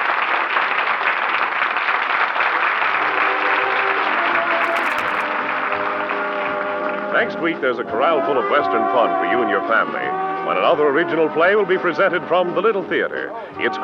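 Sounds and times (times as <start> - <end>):
large theater crowd applauding: 0.0 - 7.3
music: 2.7 - 13.8
speech: 7.2 - 13.8.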